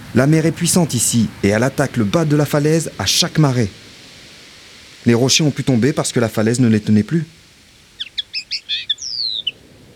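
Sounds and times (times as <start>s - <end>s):
speech: 0.1s - 3.8s, 5.0s - 7.4s
bird-call whistle: 8.0s - 9.6s.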